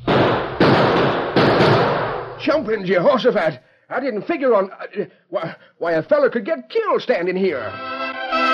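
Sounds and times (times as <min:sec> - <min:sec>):
gunshots fired high into the air: 0:00.0 - 0:02.4
speech: 0:02.4 - 0:08.4.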